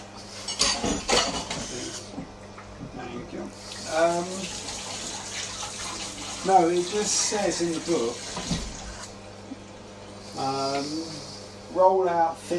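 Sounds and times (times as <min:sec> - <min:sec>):
water running from a kitchen sink tap: 0:03.5 - 0:09.2
speech: 0:03.9 - 0:04.6, 0:06.4 - 0:08.6, 0:10.4 - 0:12.5.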